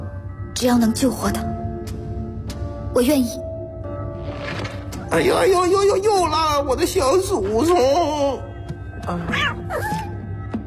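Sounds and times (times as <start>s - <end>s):
speech: 0.6s - 1.6s, 2.9s - 3.5s, 4.2s - 10.0s
cats meowing: 9.3s - 10.1s.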